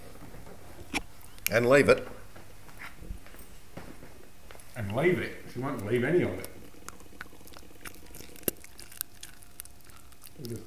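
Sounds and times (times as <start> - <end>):
speech: 1.5 - 2.2, 4.9 - 6.5
dog crunching and gnawing a cooked bone: 4.6 - 10.6
cooked bone cracking and snapping: 5.8 - 10.6.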